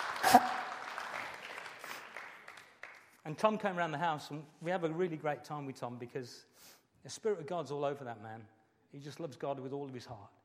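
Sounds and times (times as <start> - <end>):
audience applause: 0.0 - 3.0
speech: 3.3 - 10.4.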